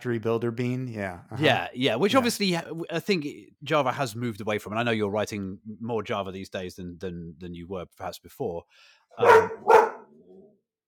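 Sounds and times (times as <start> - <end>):
speech: 0.0 - 9.9
sharp loud dog barks: 9.2 - 10.2.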